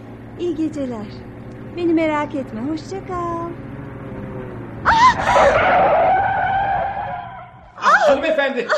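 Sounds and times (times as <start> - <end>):
car engine rumble: 0.0 - 8.5
speech: 0.4 - 3.7, 8.1 - 8.7
car tire screech from hard braking: 3.6 - 8.3.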